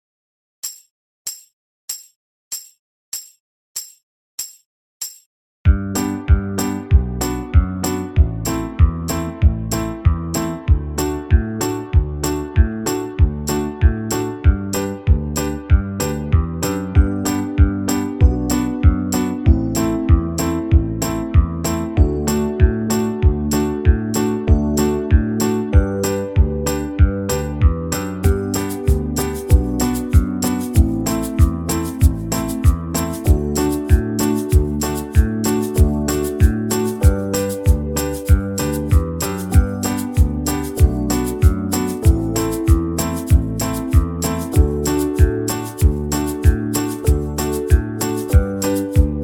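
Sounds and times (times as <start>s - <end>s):
slower banjo backing track in the key of G: 5.7s - 49.2s.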